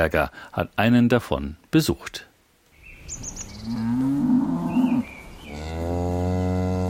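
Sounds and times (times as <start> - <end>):
speech: 0.0 - 2.3, 3.2 - 4.2
birds chirping: 2.7 - 6.4
Pinzgauer cattle mooing on a mountain pasture in Teisendorf: 3.6 - 6.8.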